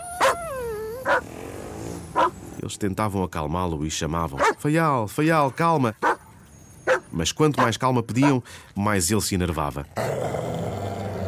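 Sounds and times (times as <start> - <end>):
dog barking: 0.2 - 1.3, 2.2 - 2.4, 4.4 - 4.6, 6.0 - 6.2, 6.8 - 8.4
speech: 2.6 - 6.1, 7.2 - 10.3.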